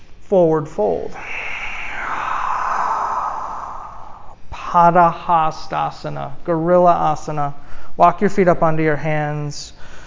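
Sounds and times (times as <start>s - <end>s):
speech: 0.3s - 1.4s, 4.7s - 9.8s
big breath in during a yoga class: 1.1s - 4.4s, 9.8s - 10.0s.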